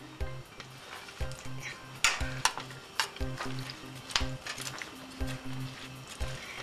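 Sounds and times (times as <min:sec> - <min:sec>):
peppers and mushrooms sizzling in a frying pot: 0:00.0 - 0:06.6
utensil scraping and clinking while stirring peppers and mushrooms in a frying pot: 0:00.6 - 0:06.6.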